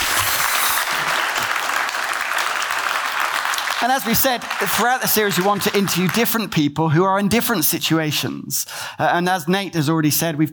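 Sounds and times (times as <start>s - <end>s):
audience applause: 0.0s - 6.4s
speech: 3.8s - 10.5s.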